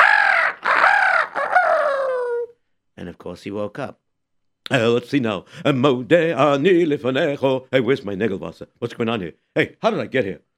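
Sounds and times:
rooster crowing: 0.0 - 2.5
speech: 3.0 - 4.0, 4.6 - 10.5.

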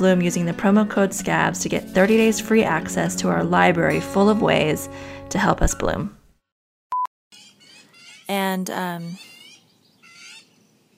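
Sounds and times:
speech: 0.0 - 6.2, 8.3 - 9.3
birds chirping with high twittering calls: 7.4 - 10.9.

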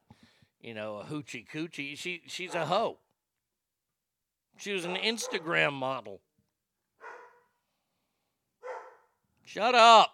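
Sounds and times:
speech: 0.6 - 3.0, 4.6 - 6.3, 9.5 - 10.1
sharp dog barks: 2.4 - 2.9, 4.8 - 5.6, 7.0 - 7.5, 8.6 - 9.1.

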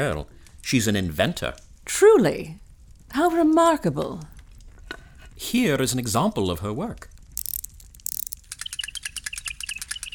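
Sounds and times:
speech: 0.0 - 4.3, 4.9 - 7.1
mechanical automaton toy bird chirping: 7.4 - 10.1.

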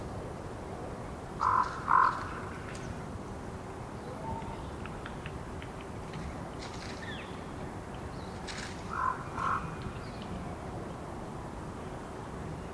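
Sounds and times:
low rumble of wind in the Colockum Wildlife area: 0.0 - 12.7
raven croaks: 1.4 - 2.3, 8.9 - 9.8.

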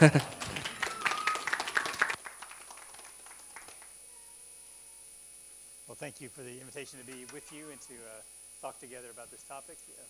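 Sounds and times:
speech: 0.0 - 0.4, 6.0 - 10.0
crowd applause: 0.0 - 4.0.

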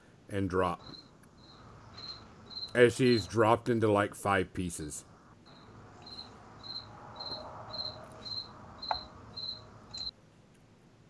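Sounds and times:
faint hum: 0.0 - 11.0
speech: 0.3 - 1.1, 2.8 - 5.1
cricket chirping: 0.7 - 3.5, 5.0 - 10.1.

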